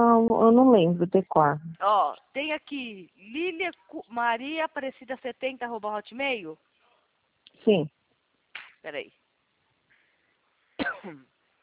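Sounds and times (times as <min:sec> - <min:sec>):
speech: 0:00.0 - 0:06.7, 0:07.6 - 0:08.0, 0:08.8 - 0:09.2, 0:10.8 - 0:11.3
dry cough: 0:10.8 - 0:11.2.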